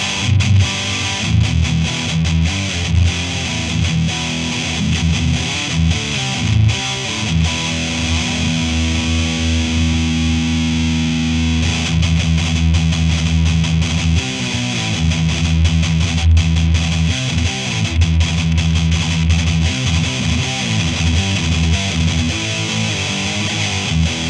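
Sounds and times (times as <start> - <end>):
distorted electric guitar chords through a Seymour Duncan Distortion bridge pickup: 0.0 - 24.2.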